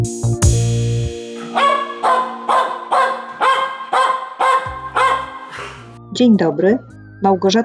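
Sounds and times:
musical sting: 0.2 - 6.0
dog barking: 1.6 - 5.8
speech: 6.2 - 7.6.

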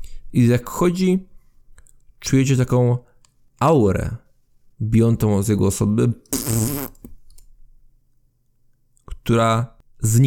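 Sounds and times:
speech: 0.3 - 1.3, 2.2 - 4.2, 4.8 - 7.0, 9.3 - 10.2
fart: 6.3 - 7.1.

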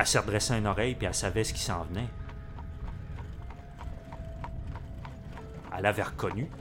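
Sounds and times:
speech: 0.0 - 2.2, 5.8 - 6.5
low rumbling background: 0.0 - 6.5
horse pulling a sleigh, hooves clip-clopping: 1.4 - 6.5.

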